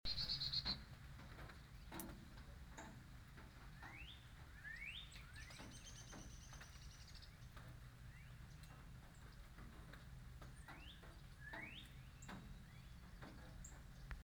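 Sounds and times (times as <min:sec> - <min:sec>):
bird calls: 0:00.1 - 0:00.8, 0:03.8 - 0:07.5, 0:10.6 - 0:14.2
rain: 0:00.1 - 0:14.2.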